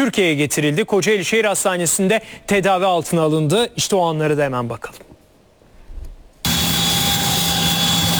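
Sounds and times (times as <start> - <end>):
speech: 0.0 - 5.1
faint high whine of ambulance aircraft: 6.4 - 8.1
ambulance aircraft engine drone: 6.5 - 8.1.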